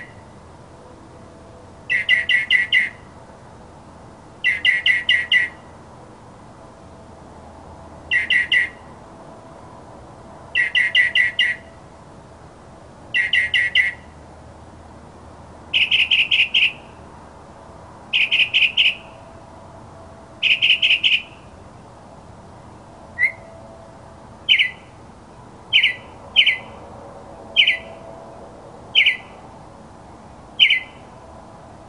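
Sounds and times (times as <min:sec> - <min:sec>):
mockingbird song: 0:01.9 - 0:03.1, 0:04.4 - 0:05.6, 0:08.1 - 0:08.8, 0:10.5 - 0:11.7, 0:13.1 - 0:14.0, 0:15.7 - 0:16.9, 0:18.1 - 0:19.1, 0:20.4 - 0:21.5, 0:23.2 - 0:23.5, 0:24.5 - 0:25.0, 0:25.7 - 0:26.8, 0:27.6 - 0:27.9, 0:28.9 - 0:29.4, 0:30.6 - 0:31.0.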